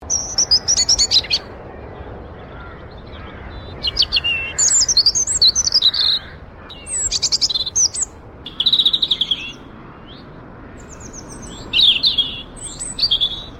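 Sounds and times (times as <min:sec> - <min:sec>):
robin birdsong: 0:00.0 - 0:13.5.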